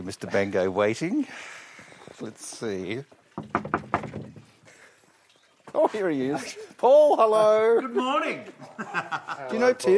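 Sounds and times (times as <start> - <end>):
speech: 0.0 - 1.6, 2.2 - 4.0, 5.8 - 9.9
knocks on a front door: 3.4 - 4.5
laughter: 6.3 - 9.9.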